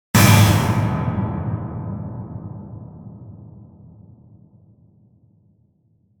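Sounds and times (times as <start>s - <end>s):
purely synthesised metal clang with long reverb: 0.2s - 4.9s.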